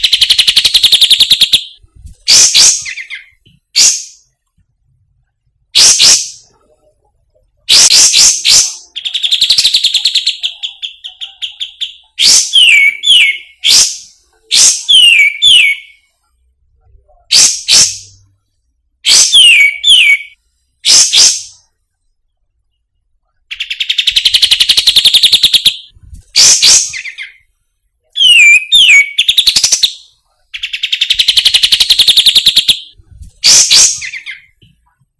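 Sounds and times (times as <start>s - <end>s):
grey-cheeked bulbul singing: 0.0s - 4.6s, 7.6s - 16.1s, 19.1s - 21.7s, 22.7s - 27.5s, 28.1s - 34.8s.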